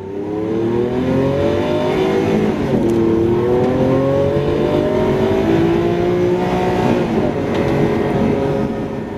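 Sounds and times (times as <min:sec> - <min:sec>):
car engine revving through gear changes: 0:00.0 - 0:09.1.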